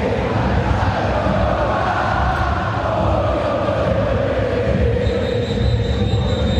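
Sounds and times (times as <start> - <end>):
nervous football stadium crowd roaring during a match: 0.0 - 6.5.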